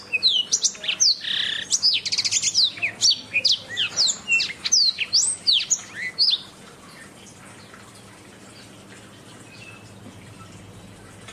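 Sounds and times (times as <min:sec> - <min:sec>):
Oriental magpie-robin whistled song: 0:00.0 - 0:06.4.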